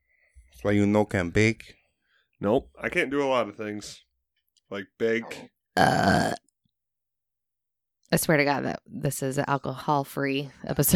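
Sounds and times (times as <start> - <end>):
speech: 0.6 - 1.8, 2.4 - 4.1, 4.7 - 6.4, 8.1 - 10.9
burp from a pregnant woman: 5.2 - 6.4.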